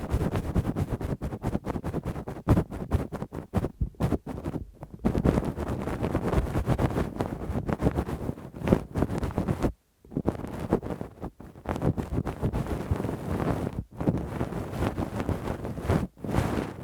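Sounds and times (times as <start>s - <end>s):
deep rumble: 0.0s - 5.6s
scratchy rubbing and crackling of ear cleaning with a swab and ear pick: 0.0s - 16.8s.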